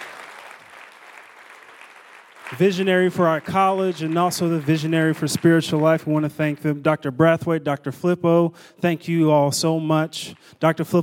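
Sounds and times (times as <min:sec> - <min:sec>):
college audience clapping: 0:00.0 - 0:06.3
speech: 0:02.5 - 0:11.0.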